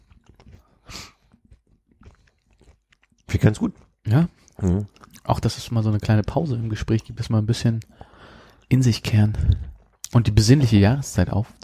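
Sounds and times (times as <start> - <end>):
two people chewing crunchy spekulatius biscuits: 0.0 - 10.9
speech: 3.3 - 8.0, 8.7 - 11.6.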